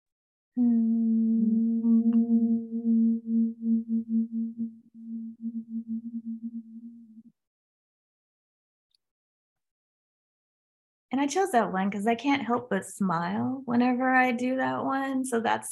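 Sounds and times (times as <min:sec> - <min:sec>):
person humming while breathing out through pursed lips: 0:00.6 - 0:04.0
speech: 0:11.2 - 0:15.6.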